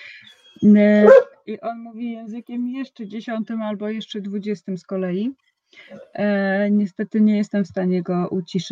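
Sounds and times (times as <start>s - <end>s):
speech: 0.6s - 8.7s
dog barking at a dog passing in a stairwell: 1.0s - 1.4s.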